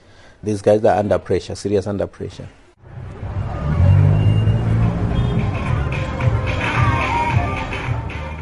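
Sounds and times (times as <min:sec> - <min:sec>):
speech: 0:00.4 - 0:02.6
car rolling past: 0:02.8 - 0:06.6
loud bass-heavy music from a car: 0:03.2 - 0:08.3.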